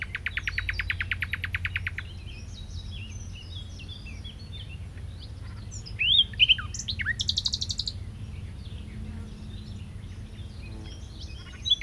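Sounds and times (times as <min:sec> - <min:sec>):
common nightingale Luscinia megarhynchos singing: 0:00.0 - 0:11.8.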